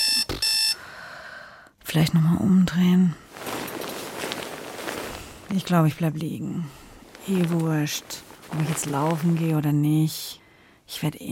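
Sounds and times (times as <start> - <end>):
electronic alarm clock buzzing: 0.0 - 0.8
speech: 1.9 - 3.2, 5.5 - 11.3.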